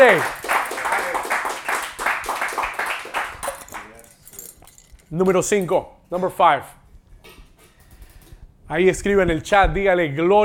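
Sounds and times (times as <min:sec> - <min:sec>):
speech: 0:00.0 - 0:00.4, 0:05.1 - 0:06.8, 0:08.7 - 0:10.4
audience applauding: 0:00.0 - 0:03.9.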